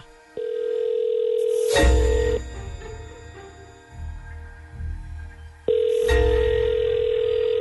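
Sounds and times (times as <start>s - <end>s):
telephone dial tone: 0.4s - 1.7s, 5.7s - 7.5s.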